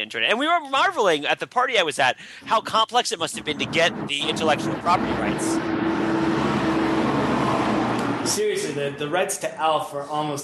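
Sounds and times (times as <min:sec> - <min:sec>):
speech: 0:00.0 - 0:06.0, 0:08.2 - 0:10.4
heavy semi-truck driving past outside: 0:02.4 - 0:09.1.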